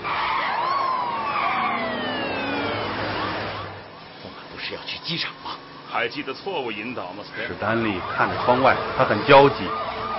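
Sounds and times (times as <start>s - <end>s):
police car siren wailing at a city intersection: 0.0s - 4.0s, 7.4s - 10.1s
steady rumble of vehicle noise: 0.0s - 10.1s
speech: 4.7s - 10.1s.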